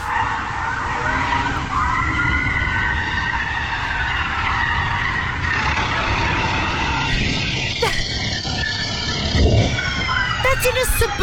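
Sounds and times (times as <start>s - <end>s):
car engines roaring in a high-speed police chase: 0.0s - 7.9s
police car tires screeching and skidding on a suburban street: 0.0s - 10.6s
faint siren-like wail: 0.0s - 11.2s.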